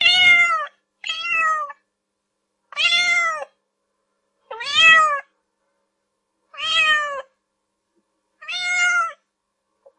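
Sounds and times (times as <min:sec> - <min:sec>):
cat meowing: 0:00.0 - 0:01.9, 0:02.7 - 0:03.6, 0:04.5 - 0:05.3, 0:06.5 - 0:07.4, 0:08.4 - 0:09.2.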